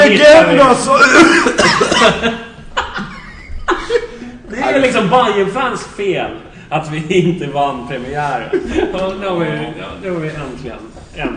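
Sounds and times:
speech: 0.1s - 2.5s, 4.6s - 11.3s
person coughing: 1.0s - 2.3s
laughter: 1.0s - 4.4s, 8.5s - 9.1s.

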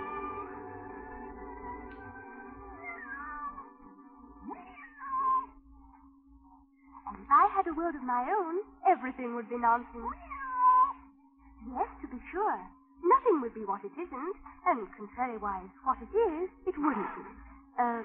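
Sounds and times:
cat meowing: 2.6s - 3.7s, 4.4s - 5.6s, 10.1s - 11.0s
speech: 7.6s - 10.3s, 11.6s - 18.0s.

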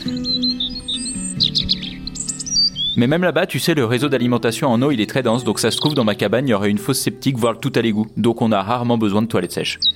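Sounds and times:
small birds chirping and twittering: 0.0s - 3.2s, 5.0s - 6.4s, 7.6s - 9.9s
speech: 3.0s - 9.9s.

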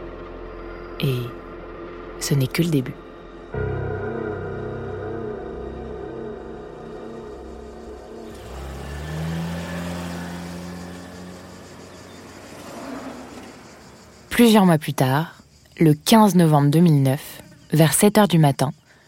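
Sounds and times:
speech: 1.0s - 1.4s, 2.2s - 3.8s, 14.4s - 18.8s
four-wheel-drive engine droning: 3.0s - 14.3s
road and tyre noise: 5.9s - 14.7s.

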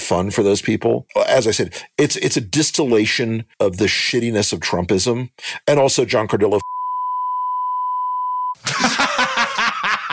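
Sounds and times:
man talking energetically: 0.0s - 6.6s
speech: 0.1s - 6.6s
steady loud censor bleep tone: 6.6s - 8.6s
laughter: 8.6s - 10.1s.

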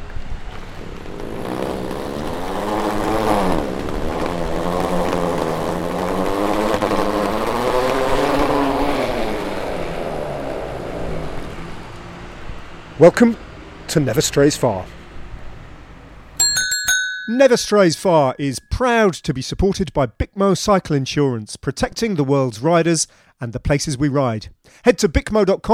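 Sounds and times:
suitcase wheels rolling over ridged pavement: 0.0s - 13.9s
speech: 13.0s - 15.0s, 17.3s - 25.7s.

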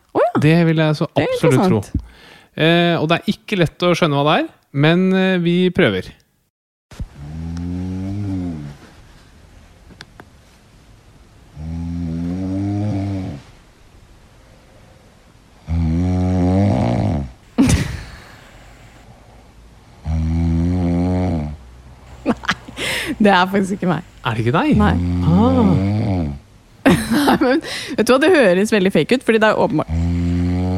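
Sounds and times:
speech: 0.4s - 6.2s, 23.2s - 26.0s, 27.3s - 30.1s
loud drawn-out rumbling snoring: 7.2s - 8.8s, 11.6s - 13.5s, 15.6s - 17.4s, 19.0s - 22.3s, 24.6s - 26.4s, 29.8s - 30.7s
laughter: 22.2s - 22.9s, 26.9s - 27.6s.

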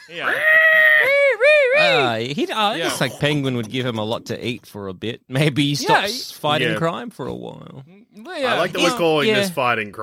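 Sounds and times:
speech: 0.1s - 0.6s, 2.2s - 10.0s
person's voice imitating the screech of a bat creature: 0.1s - 2.0s.

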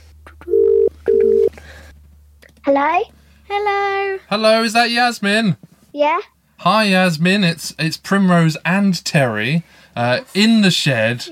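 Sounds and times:
telephone ringing tone on an outgoing call: 0.5s - 1.5s
speech: 2.7s - 11.2s.

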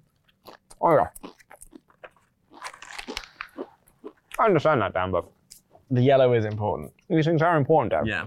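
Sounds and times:
person biting and chewing a snack: 0.1s - 4.4s
speech: 0.8s - 1.2s, 4.4s - 8.2s.

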